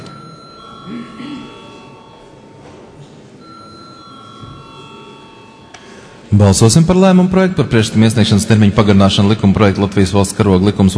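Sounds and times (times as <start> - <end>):
electronic bell ringing in a parliament chamber before a vote: 0.0 - 2.6, 3.3 - 6.6
speech: 0.8 - 1.6, 6.4 - 10.9.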